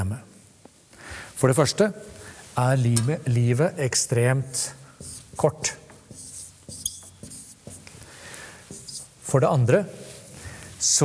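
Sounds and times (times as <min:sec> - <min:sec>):
speech: 0:01.4 - 0:05.8, 0:09.3 - 0:10.0, 0:10.8 - 0:11.0
chalk scratching across a blackboard: 0:05.0 - 0:09.3
faint rubbing: 0:05.0 - 0:10.9.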